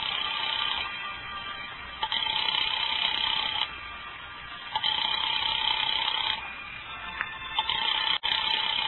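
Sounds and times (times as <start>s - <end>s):
telephone ringing heard down a phone line: 0.0s - 3.7s, 4.7s - 6.5s, 7.4s - 8.8s.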